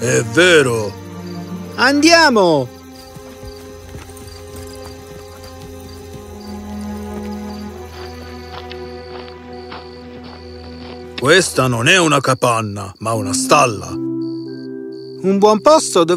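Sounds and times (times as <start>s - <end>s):
speech: 0.0s - 1.0s, 1.8s - 2.8s, 11.2s - 14.1s, 15.2s - 16.1s
sustained musical backdrop: 0.0s - 16.1s
horses' hooves clip-clopping: 2.6s - 11.4s.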